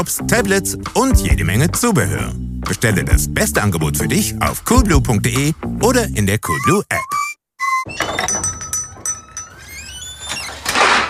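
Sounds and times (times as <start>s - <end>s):
speech: 0.0s - 7.2s
kitchen drawer sliding open on squeaky runners: 10.1s - 11.0s.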